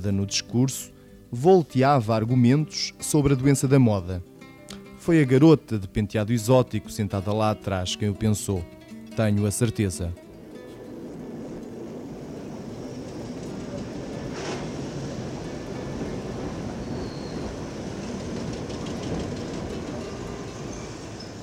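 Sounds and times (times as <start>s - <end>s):
speech: 0.0s - 4.3s, 5.0s - 10.2s
tram rolling slowly along its rails with a steady rumble: 9.6s - 21.4s.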